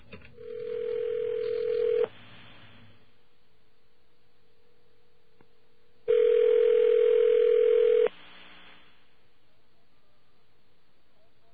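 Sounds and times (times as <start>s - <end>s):
telephone dial tone: 0.4s - 2.1s, 6.1s - 8.1s.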